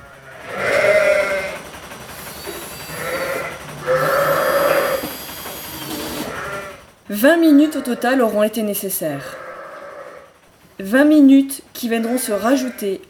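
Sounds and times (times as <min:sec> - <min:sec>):
sheep bleating: 0:00.0 - 0:01.6, 0:02.4 - 0:05.1, 0:06.2 - 0:08.4, 0:09.1 - 0:10.4, 0:11.8 - 0:13.0
rustling farmyard background at a sheep milking machine: 0:00.0 - 0:13.0
speech: 0:07.1 - 0:09.4, 0:10.8 - 0:13.0.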